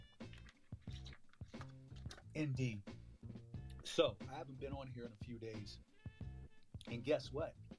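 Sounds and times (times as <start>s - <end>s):
person taking a swig of water: 0.2s - 2.3s
speech: 2.3s - 2.9s, 3.9s - 5.9s, 6.9s - 7.6s.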